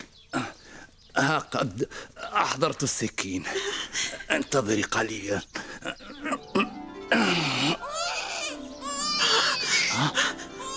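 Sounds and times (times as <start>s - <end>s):
speech: 1.2s - 5.6s, 6.6s - 7.8s
baby wailing and sobbing: 6.1s - 10.7s.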